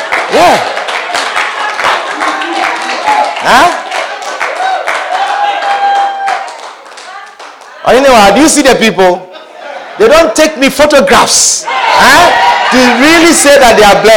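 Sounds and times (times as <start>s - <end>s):
crowd clapping: 0.0s - 8.1s
speech: 3.4s - 3.8s, 7.9s - 9.2s, 10.0s - 14.1s.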